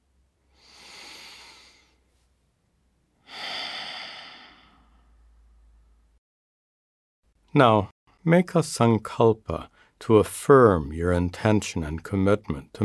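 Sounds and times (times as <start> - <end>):
deep breaths during a seated meditation exercise: 0.5 - 2.3, 3.2 - 5.4
speech: 7.6 - 12.8.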